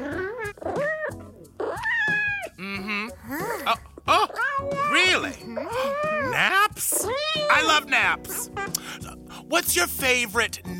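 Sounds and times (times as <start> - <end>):
pet cat meowing: 0.0 - 2.6, 4.0 - 8.7
speech: 9.5 - 10.7.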